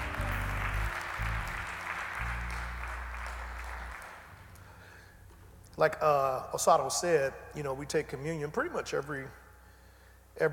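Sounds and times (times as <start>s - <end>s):
audience clapping hands in praise to God: 0.0s - 4.6s
low sustained instrumental chords: 0.0s - 4.6s
speech: 5.8s - 9.4s.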